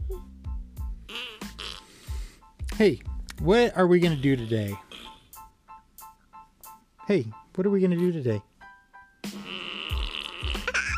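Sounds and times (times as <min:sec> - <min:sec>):
speech: 0:00.1 - 0:00.3, 0:02.8 - 0:04.9, 0:07.1 - 0:08.5
bubble fart sound effect with wet sputtering pops: 0:01.1 - 0:01.9, 0:09.3 - 0:10.9.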